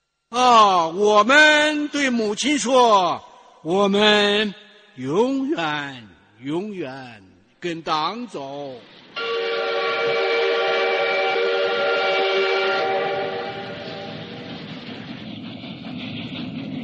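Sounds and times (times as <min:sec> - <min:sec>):
speech: 0:00.3 - 0:09.3
low rumble of the rolling train: 0:08.6 - 0:16.8
loud sustained train whistle: 0:09.2 - 0:14.6.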